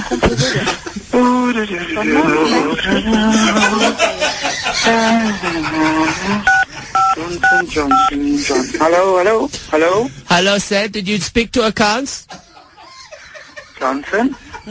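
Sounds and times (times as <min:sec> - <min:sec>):
laughter: 0:00.0 - 0:01.1, 0:02.2 - 0:07.6, 0:12.3 - 0:14.6
speech: 0:00.1 - 0:06.6, 0:07.3 - 0:12.4, 0:13.8 - 0:14.6
telephone keypad tones on an automated phone menu: 0:06.5 - 0:08.1.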